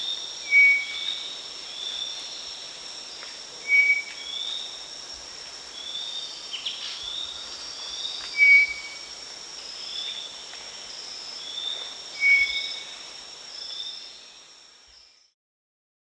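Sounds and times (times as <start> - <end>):
maroon-breasted philentoma calling with whistled notes: 3.7 - 4.3, 8.4 - 9.0, 12.2 - 12.7.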